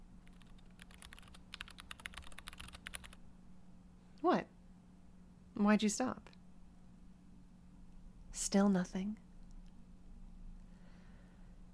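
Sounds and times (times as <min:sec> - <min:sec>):
faint low hum: 0:00.0 - 0:11.7
typing on a computer keyboard: 0:00.2 - 0:03.2
speech: 0:04.2 - 0:04.5, 0:05.6 - 0:06.3, 0:08.5 - 0:09.2.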